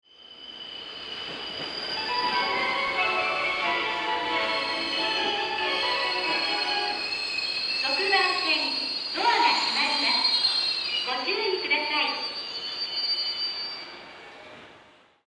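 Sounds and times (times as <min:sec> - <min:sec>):
Yamanote line platform 6 train departure melody in Tokyo: 0:00.2 - 0:14.3.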